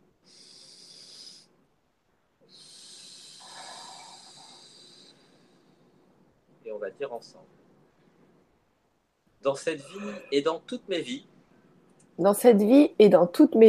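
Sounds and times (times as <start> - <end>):
deep breath taken aloud: 0.2 - 1.7, 2.4 - 6.4
speech: 6.8 - 7.6, 9.4 - 11.3, 12.2 - 13.6.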